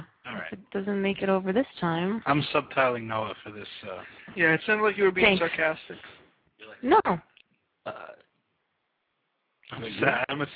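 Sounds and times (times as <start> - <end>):
speech: 0.5 - 6.2, 6.8 - 7.3, 9.7 - 10.5
burp: 7.9 - 8.3.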